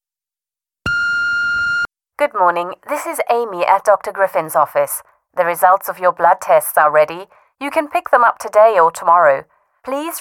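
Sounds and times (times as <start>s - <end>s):
voicemail message beep: 0.9s - 1.9s
speech: 2.2s - 10.1s.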